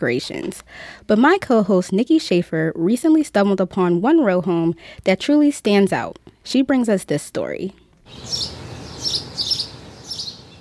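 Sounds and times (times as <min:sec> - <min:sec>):
speech: 0:00.0 - 0:09.2
birds chirping along a side street by a row home: 0:08.1 - 0:10.5.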